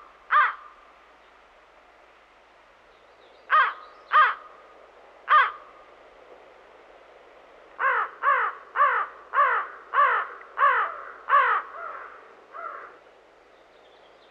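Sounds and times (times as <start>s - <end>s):
American crow cawing: 0.3s - 0.8s, 3.5s - 4.5s, 5.3s - 5.6s, 7.8s - 13.0s.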